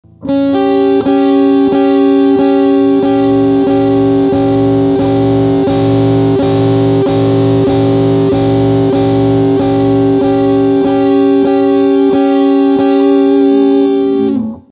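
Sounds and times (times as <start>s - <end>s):
guitar playing a tritone: 0.0s - 14.7s.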